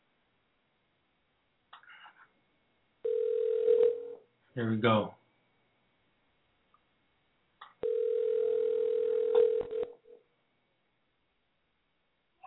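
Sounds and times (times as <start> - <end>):
long steady phone ringback tones through a handset: 3.0 - 4.2, 7.8 - 10.0
speech: 4.6 - 5.2.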